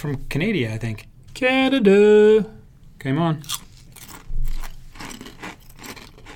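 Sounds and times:
speech: 0:00.0 - 0:03.7
bag of maple bacon kettle potato chips crinkling: 0:03.5 - 0:06.3.

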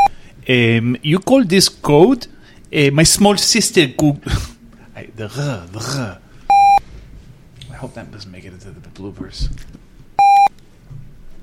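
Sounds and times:
speech: 0:00.5 - 0:06.2, 0:07.8 - 0:09.9
loud electronic beep: 0:06.5 - 0:06.8, 0:10.2 - 0:10.5.

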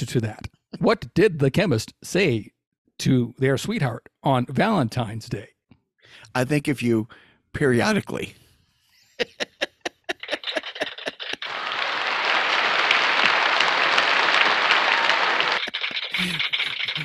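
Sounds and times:
speech: 0:00.0 - 0:08.4, 0:09.2 - 0:09.5
artificial canned laughter track: 0:09.1 - 0:17.0
artificial canned applause track: 0:10.2 - 0:17.0.

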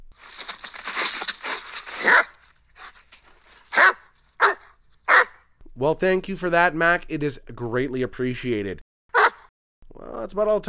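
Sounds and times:
Irish wolfhound barking deeply and roughly: 0:03.8 - 0:05.4
speech: 0:05.8 - 0:08.9, 0:10.3 - 0:10.6.

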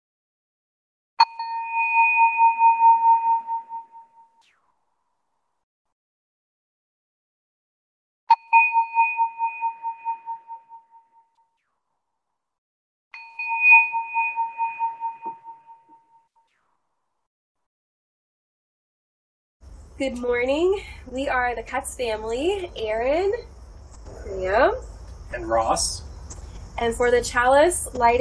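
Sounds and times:
worship bell ringing: 0:01.2 - 0:04.4, 0:08.3 - 0:11.4, 0:13.2 - 0:16.2
speech: 0:20.0 - 0:23.5, 0:24.3 - 0:26.0, 0:26.8 - 0:28.1.

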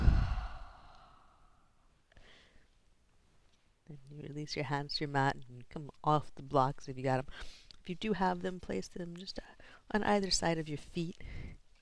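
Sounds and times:
deep breath exhaled through the open mouth during yoga practice: 0:00.0 - 0:01.6
speech: 0:03.9 - 0:11.5.

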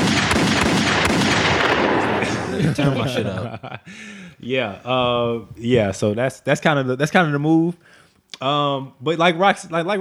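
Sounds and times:
continuous roar of gunfire-like noise: 0:00.0 - 0:02.6
gunshot sound effect bangs: 0:00.0 - 0:02.6
laughter: 0:02.0 - 0:06.2
speech: 0:02.6 - 0:09.9.

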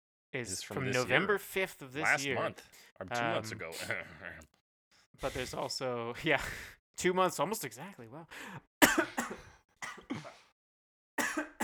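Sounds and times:
speech: 0:00.3 - 0:04.6, 0:05.2 - 0:08.7
person coughing after choking on own spit: 0:08.8 - 0:10.5, 0:11.2 - 0:11.6.

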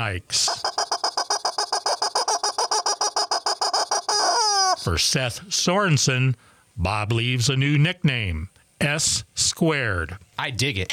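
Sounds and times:
speech: 0:00.0 - 0:00.7, 0:04.8 - 0:10.9
chicken clucking: 0:00.5 - 0:04.8.

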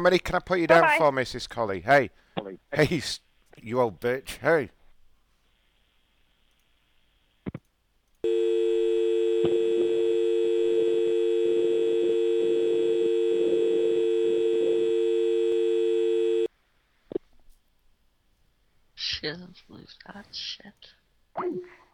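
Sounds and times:
speech: 0:00.0 - 0:04.8, 0:19.2 - 0:21.8
faint clicks: 0:06.4 - 0:06.8
telephone dial tone: 0:08.2 - 0:16.5.

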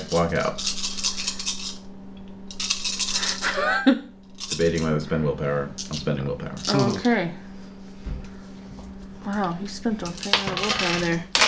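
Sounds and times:
dice rolled during a tabletop role-playing game: 0:00.0 - 0:01.8, 0:02.5 - 0:03.2, 0:10.1 - 0:11.4
low steady hum: 0:00.0 - 0:11.4
speech: 0:00.1 - 0:00.8, 0:03.8 - 0:07.5, 0:09.2 - 0:11.4.

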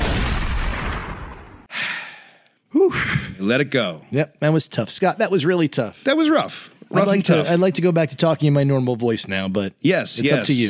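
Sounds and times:
sharp gunshot burst: 0:00.0 - 0:01.7
speech: 0:02.9 - 0:10.6.

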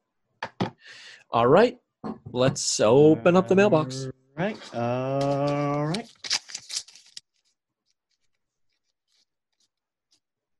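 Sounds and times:
speech: 0:00.9 - 0:06.4
sheet of paper being ripped up: 0:04.6 - 0:10.2.

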